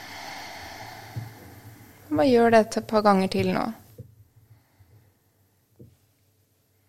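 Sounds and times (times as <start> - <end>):
slow deep exhale in a belly-breathing exercise: 0.0 - 2.2
speech: 2.1 - 3.8.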